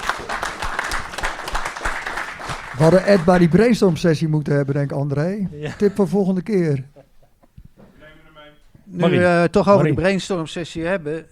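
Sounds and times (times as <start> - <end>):
applause from a group at a meeting: 0.0 - 4.0
speech: 2.8 - 6.9, 8.9 - 11.3.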